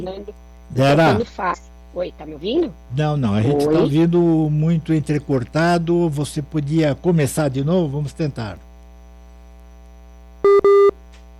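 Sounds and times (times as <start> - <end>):
speech: 0.0 - 8.7
electronic busy tone beeps on a phone line after a call drops: 10.4 - 11.0.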